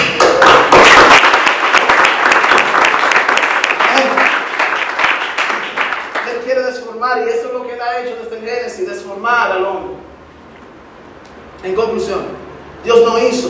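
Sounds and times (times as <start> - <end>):
crowd applause: 0.0 - 6.4
speech: 8.8 - 10.1, 11.6 - 13.4.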